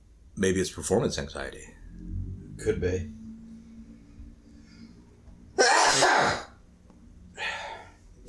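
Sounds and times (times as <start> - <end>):
speech: 0.4 - 1.8, 2.6 - 3.2
person sneezing from an allergy attack: 5.6 - 6.6.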